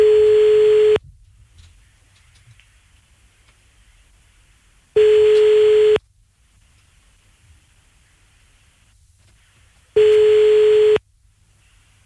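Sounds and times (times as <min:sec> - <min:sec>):
telephone tones while a call is being placed: 0:00.0 - 0:01.0, 0:05.0 - 0:06.0, 0:10.0 - 0:11.0
quiet telephone line noise: 0:00.0 - 0:12.0.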